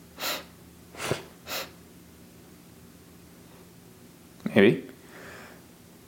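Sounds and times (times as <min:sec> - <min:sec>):
person sneezing: 0:00.2 - 0:01.8
person sniffing: 0:00.2 - 0:01.8
speech: 0:04.6 - 0:04.9.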